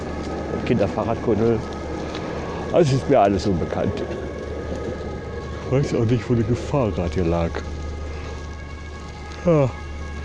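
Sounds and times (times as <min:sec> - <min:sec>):
light drizzle rain falling: 0:00.0 - 0:10.2
speech: 0:00.7 - 0:01.8, 0:02.7 - 0:04.2, 0:05.7 - 0:07.7, 0:09.4 - 0:09.8.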